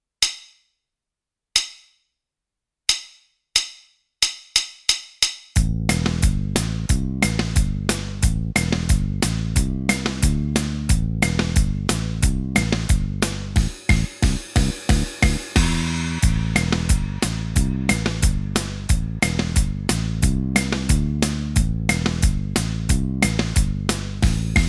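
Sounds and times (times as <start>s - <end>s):
bass riff: 5.6s - 24.6s.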